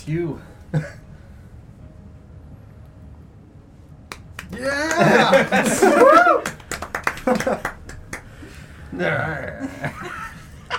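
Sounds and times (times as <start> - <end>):
speech: 0.0 - 1.0, 4.6 - 6.6, 7.2 - 7.7, 8.9 - 10.2
low hum: 0.0 - 10.7
sharp hand claps: 4.1 - 5.7, 6.4 - 8.3
laughter: 4.5 - 8.0, 9.0 - 10.7.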